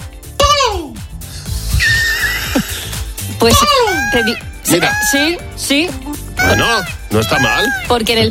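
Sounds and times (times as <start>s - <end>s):
laughter: 1.8s - 2.9s, 3.5s - 5.4s, 6.4s - 8.0s
speech: 3.4s - 8.2s
person imitating a peacock's call: 3.5s - 5.4s, 6.4s - 8.0s.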